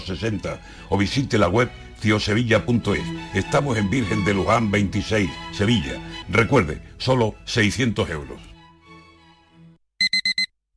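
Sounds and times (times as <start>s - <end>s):
speech: 0.0s - 8.5s
alarm clock beeping: 10.0s - 10.5s.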